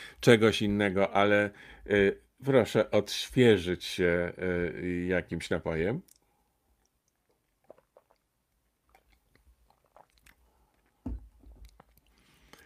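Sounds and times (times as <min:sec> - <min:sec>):
speech: 0:00.2 - 0:06.2
sipping water from a copper mug: 0:06.0 - 0:12.6
wet mouth sounds: 0:06.0 - 0:12.6.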